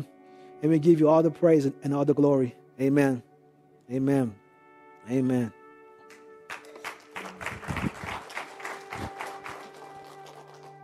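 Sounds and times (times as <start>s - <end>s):
speech: 0.0s - 3.3s, 3.9s - 4.4s, 5.0s - 5.6s
church audience clapping after a sermon: 6.1s - 10.8s.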